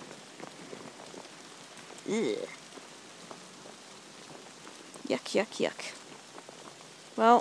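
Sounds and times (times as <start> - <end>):
heavy rain falling outdoors: 0.0 - 7.3
rising and falling voice-like sound: 2.1 - 2.6
speech: 2.1 - 2.6, 5.1 - 6.0, 7.2 - 7.3.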